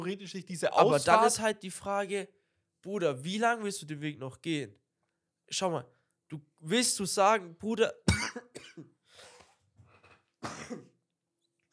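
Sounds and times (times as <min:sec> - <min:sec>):
speech: 0:00.0 - 0:04.8, 0:05.5 - 0:08.9
person coughing: 0:08.1 - 0:09.0, 0:10.4 - 0:11.0
throat clearing: 0:10.4 - 0:11.0.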